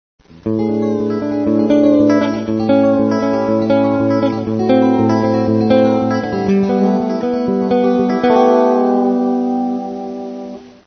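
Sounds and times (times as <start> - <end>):
guitar string bending: 0.2 - 10.8.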